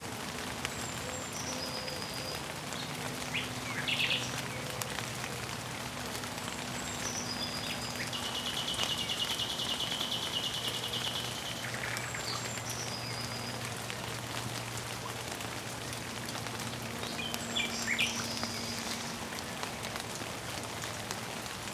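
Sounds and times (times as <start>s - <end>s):
rain: 0.0s - 21.7s
birds: 0.6s - 14.2s, 16.2s - 20.0s.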